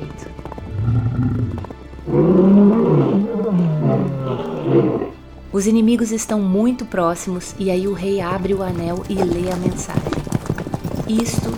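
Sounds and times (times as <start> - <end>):
lions roaring and growling: 0.6 - 5.2
speech: 5.6 - 10.3, 11.1 - 11.5.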